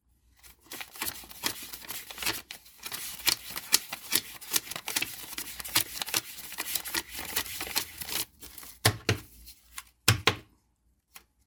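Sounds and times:
dollar banknotes being counted quickly: 0.7 - 8.3.

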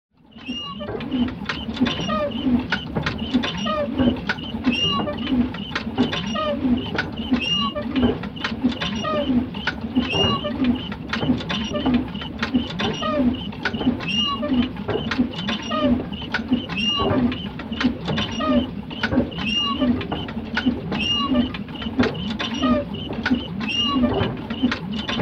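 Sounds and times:
windmill creaking: 0.3 - 25.2.

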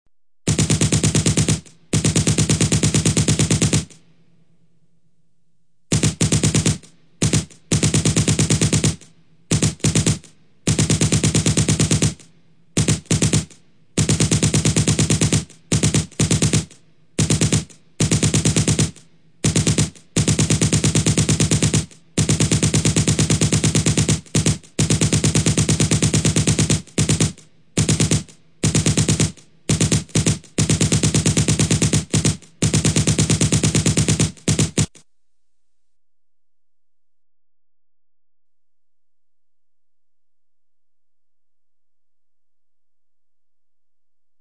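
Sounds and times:
automatic gunfire bursts: 0.5 - 4.0, 5.9 - 35.0.

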